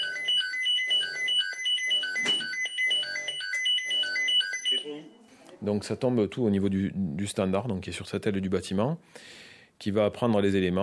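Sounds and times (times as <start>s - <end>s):
fire station electronic alarm tone beeping: 0.0s - 5.1s
speech: 5.6s - 10.8s.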